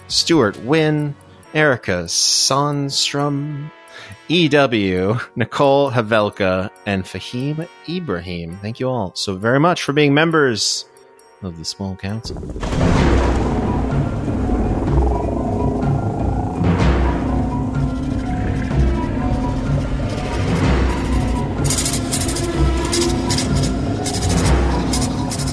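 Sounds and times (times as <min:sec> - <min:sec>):
speech: 0:00.1 - 0:13.4
deep rumbling thunder: 0:12.2 - 0:25.0.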